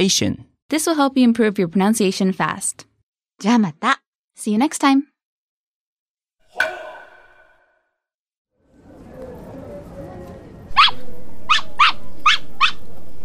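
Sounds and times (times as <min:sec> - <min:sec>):
speech: 0:00.0 - 0:05.1
small toy poodle yapping: 0:10.7 - 0:12.9.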